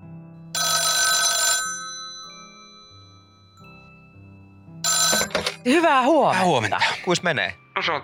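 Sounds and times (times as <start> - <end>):
telephone bell ringing loudly: 0.6 - 3.7, 4.8 - 5.7
speech: 5.6 - 8.0.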